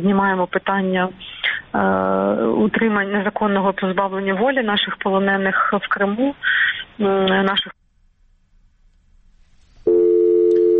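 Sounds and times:
speech: 0.0 - 7.8
telephone busy tone after a dropped call: 9.9 - 10.7.

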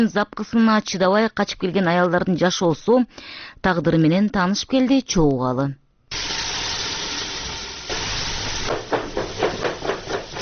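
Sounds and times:
speech: 0.0 - 6.4
steady hiss: 6.1 - 10.3
pregnant woman chopping carrots in a crisis-centre kitchen: 8.7 - 10.3.

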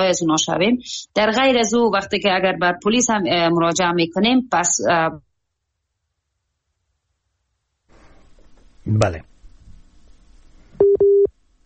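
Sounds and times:
speech: 0.0 - 5.3, 8.9 - 9.3
telephone busy signal after a dropped call: 10.8 - 11.3.

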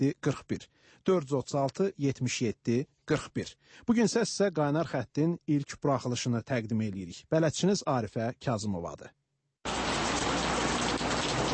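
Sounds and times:
speech: 0.0 - 9.2
steady autumn rain on surfaces in Baku: 9.7 - 11.5.

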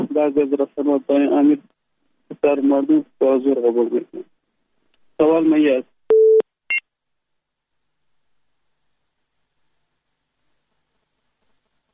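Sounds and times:
speech: 0.2 - 1.7, 2.4 - 4.3, 5.2 - 5.9
high-pitched phone beep as a caller's line disconnects: 6.1 - 6.8.

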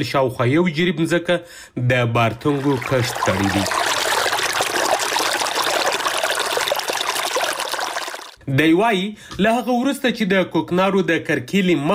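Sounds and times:
speech: 0.0 - 3.9, 8.5 - 11.9
water flowing as a farmer irrigates his field: 2.2 - 8.4.

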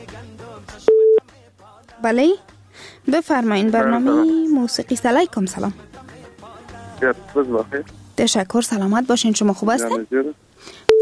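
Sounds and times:
telephone line beep for an incoming call to a music request line: 0.9 - 1.2
speech: 2.0 - 2.5, 3.1 - 5.9, 7.0 - 10.9.

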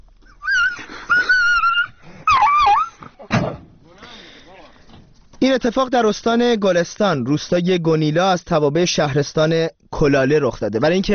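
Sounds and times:
dog yelping and whining in distress: 0.3 - 3.2
speech: 5.4 - 11.1.

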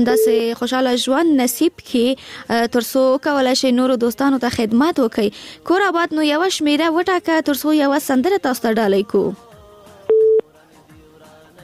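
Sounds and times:
speech: 0.0 - 9.5
telephone busy tone beep after a dropped call: 0.1 - 0.4, 10.1 - 10.4.

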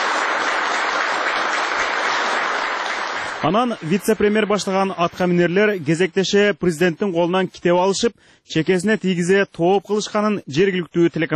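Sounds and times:
audience applause at a security committee meeting: 0.0 - 4.5
speech: 3.4 - 11.3.

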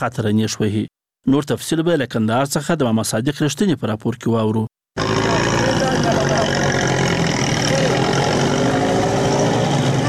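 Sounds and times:
speech: 0.0 - 5.4
highway road noise: 5.0 - 10.0
minivan engine running on a highway: 5.0 - 10.0.

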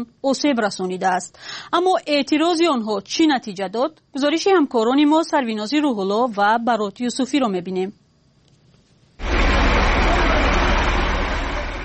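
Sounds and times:
speech: 0.0 - 8.0
heavy cargo trucks passing through street: 9.2 - 11.8
road noise: 9.2 - 11.8.

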